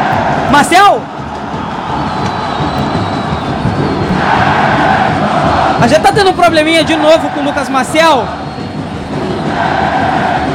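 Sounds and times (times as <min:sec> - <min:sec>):
football supporters cheering and chanting in stadium: 0:00.0 - 0:10.5
speech: 0:00.5 - 0:01.2, 0:05.8 - 0:08.4.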